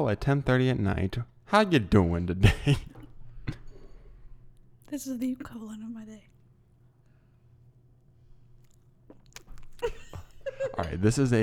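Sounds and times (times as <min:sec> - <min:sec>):
speech: 0:00.0 - 0:02.9, 0:04.9 - 0:06.3, 0:09.8 - 0:11.4
person chewing cake: 0:08.3 - 0:10.5.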